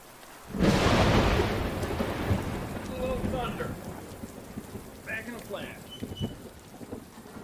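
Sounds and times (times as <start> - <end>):
steady patter of rain: 0.0 - 7.4
loud clap of thunder: 0.5 - 7.4
faint chirps: 5.8 - 6.4.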